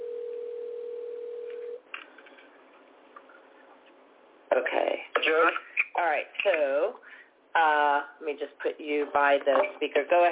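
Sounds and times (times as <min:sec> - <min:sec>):
quiet telephone line hiss: 0:00.0 - 0:01.8
steady low telephone dial tone: 0:00.0 - 0:01.8
speech: 0:04.5 - 0:10.2.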